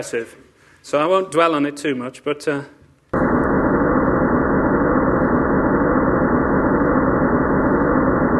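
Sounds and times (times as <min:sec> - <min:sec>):
speech: 0:00.0 - 0:02.8
simulated Big Bang rumble from microwave background: 0:03.2 - 0:08.3.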